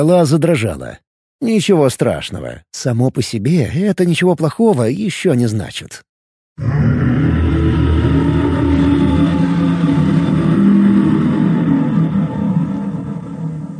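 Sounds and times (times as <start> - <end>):
speech: 0.0 - 7.4
dragon roar sweeping over a lake: 6.6 - 13.7.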